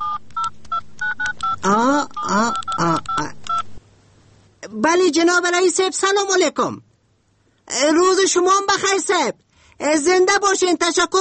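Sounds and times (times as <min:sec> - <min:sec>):
telephone keypad beeps as a number is dialed: 0:00.0 - 0:03.7
speech: 0:01.6 - 0:02.6, 0:04.9 - 0:06.9, 0:07.7 - 0:11.2.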